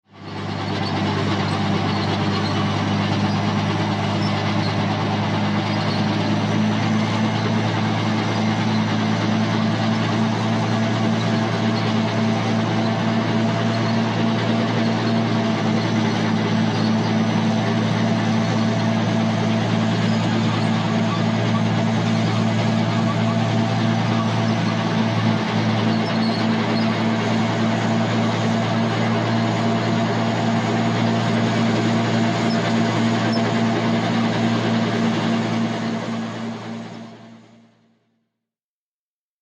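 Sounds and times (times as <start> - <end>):
war vehicle tank moving: 0.1 - 37.6.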